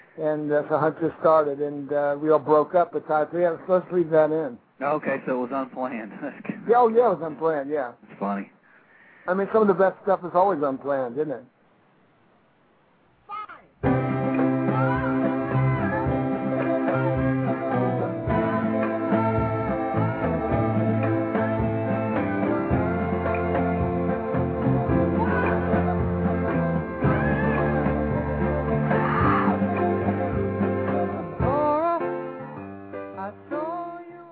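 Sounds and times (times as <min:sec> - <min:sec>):
speech: 0:00.2 - 0:08.6, 0:09.3 - 0:11.5
loud dense band playing: 0:13.8 - 0:33.7
man screaming with raw strained voice: 0:25.2 - 0:25.8, 0:27.0 - 0:27.9, 0:28.9 - 0:29.6.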